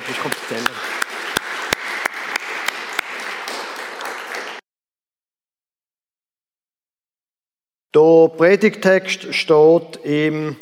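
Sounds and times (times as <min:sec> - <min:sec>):
audience applause: 0:00.0 - 0:04.6
speech: 0:00.2 - 0:00.9, 0:07.9 - 0:10.6.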